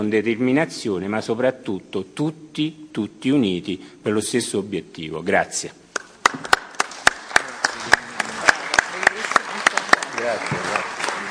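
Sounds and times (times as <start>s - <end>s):
speech: 0.0s - 6.5s
applause after a speech at a remembrance gathering for mafia victims: 5.9s - 11.2s.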